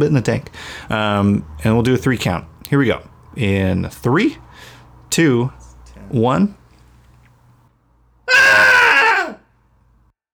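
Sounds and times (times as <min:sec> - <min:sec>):
speech: 0:00.0 - 0:06.6
person screaming: 0:08.3 - 0:09.4.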